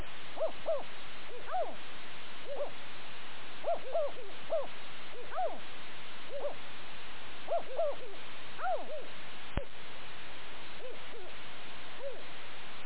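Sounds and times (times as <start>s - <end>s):
owl pair calling: 0.0s - 1.8s, 2.4s - 2.8s, 3.6s - 5.7s, 6.3s - 6.6s, 7.5s - 9.1s, 10.8s - 11.4s, 12.0s - 12.3s.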